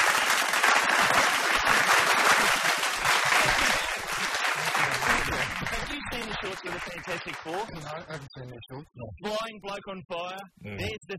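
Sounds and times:
recorded canned crowd applause: 0.0 - 8.2
speech: 6.7 - 11.1.

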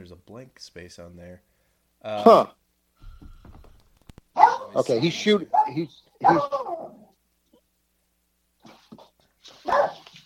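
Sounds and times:
speech: 0.0 - 2.6, 4.7 - 6.7
dog barking and yipping: 4.4 - 6.9, 9.6 - 10.2.

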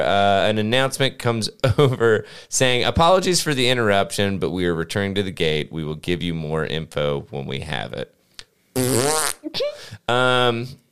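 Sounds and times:
speech: 0.0 - 8.2, 8.8 - 10.8
fart noise sound effect: 8.8 - 9.6.

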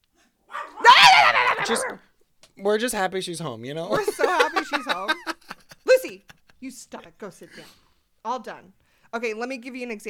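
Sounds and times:
dog barking: 0.5 - 2.0
speech: 1.6 - 5.2, 6.1 - 10.0
laughter: 3.9 - 6.7.

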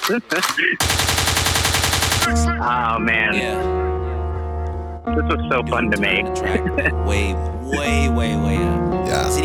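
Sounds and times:
speech: 0.0 - 1.3, 2.3 - 4.0, 5.0 - 9.4
rapid-fire automatic weapon gunshots: 0.8 - 2.4
short vocal sound: 9.1 - 9.4.

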